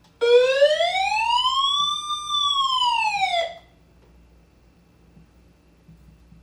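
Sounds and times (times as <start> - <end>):
personal SOS alarm siren wailing after button push: 0.2 - 3.7.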